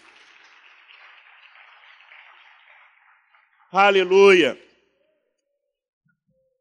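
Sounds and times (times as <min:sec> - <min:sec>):
audience applauding during a sermon: 0:00.0 - 0:04.6
speech: 0:03.7 - 0:04.6.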